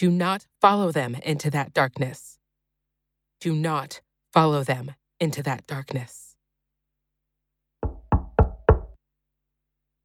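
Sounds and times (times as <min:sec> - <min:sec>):
speech: 0:00.0 - 0:02.4, 0:03.4 - 0:06.2
firm hollow woody knocks on a door: 0:07.8 - 0:09.0.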